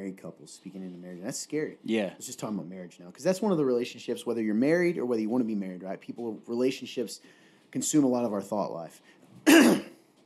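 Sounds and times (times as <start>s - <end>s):
speech: 0.1s - 9.9s
single short harsh cough: 9.4s - 10.0s.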